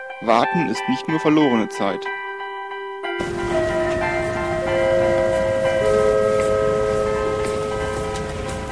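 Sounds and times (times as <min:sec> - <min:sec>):
speech: 0:00.2 - 0:02.3
sustained high ringing tones: 0:02.2 - 0:08.7
train rumbling through a station: 0:03.2 - 0:08.7.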